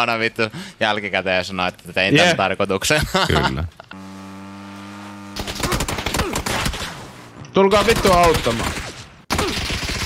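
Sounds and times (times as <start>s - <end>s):
speech: 0.0s - 4.0s, 7.6s - 8.8s
laughter: 2.9s - 4.0s
video game gunfire: 5.3s - 10.0s.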